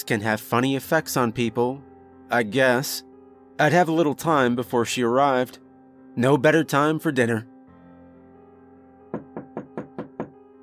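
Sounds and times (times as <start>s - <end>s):
speech: 0.0s - 5.6s, 6.2s - 7.5s
knocking on a door: 9.1s - 10.4s.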